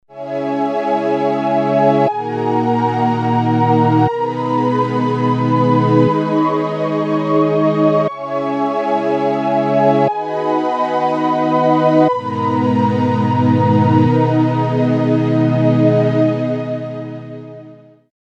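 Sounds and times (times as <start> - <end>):
strings: 0.2 - 17.8.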